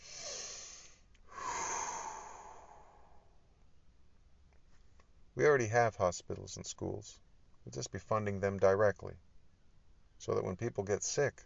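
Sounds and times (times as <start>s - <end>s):
slow breath drawn in through the nose: 0.0s - 3.3s
speech: 5.4s - 9.2s, 10.2s - 11.4s.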